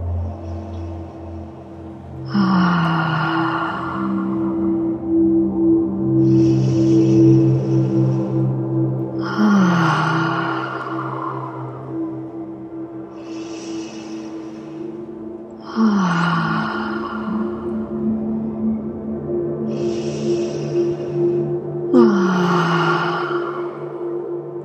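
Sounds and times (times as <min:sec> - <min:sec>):
deep breathing in during breathing exercise: 0:00.0 - 0:24.6
steady low tonal hum: 0:00.0 - 0:24.6.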